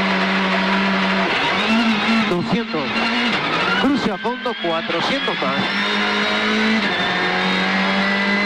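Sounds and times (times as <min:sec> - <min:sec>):
rally car engine roaring at full throttle on a provincial rally stage: 0:00.0 - 0:08.4
speech: 0:04.2 - 0:07.2.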